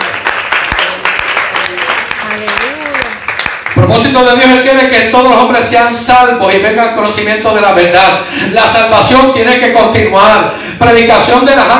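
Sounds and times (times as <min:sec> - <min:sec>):
audience applauding: 0:00.0 - 0:04.2
speech: 0:03.8 - 0:11.7.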